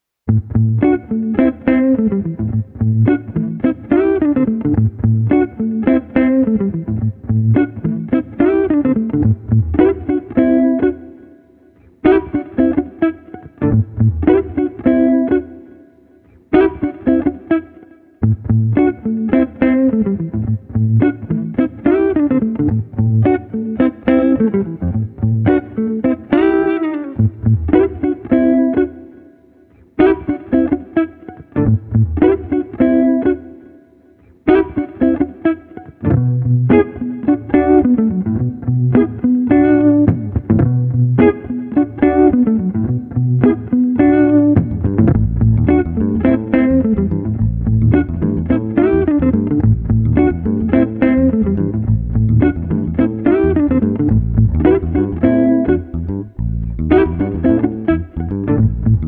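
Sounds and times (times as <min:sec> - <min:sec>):
bass guitar in a groovy jam: 0:00.3 - 0:10.9, 0:13.6 - 0:15.3, 0:18.2 - 0:26.3, 0:27.2 - 0:28.6, 0:31.6 - 0:33.1, 0:36.0 - 0:59.0
street guitars playing a groovy jam: 0:00.3 - 0:59.0.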